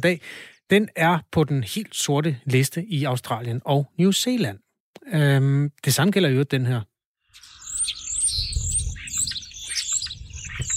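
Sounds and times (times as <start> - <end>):
speech: 0.0 - 6.9
common starling singing whistles, clicks and chattering phrases: 7.3 - 10.7.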